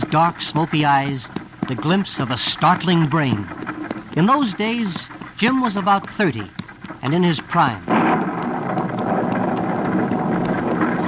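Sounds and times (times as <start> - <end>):
speech: 0.1 - 3.6, 4.2 - 8.0
dense heavy rain in a thunderstorm: 7.9 - 11.0
low thunder rumbling: 7.9 - 11.0.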